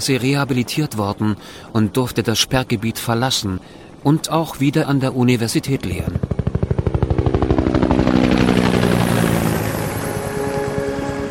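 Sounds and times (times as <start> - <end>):
speech: 0.0 - 6.4
helicopter rotor thumping and engine roaring in flight: 5.8 - 11.2.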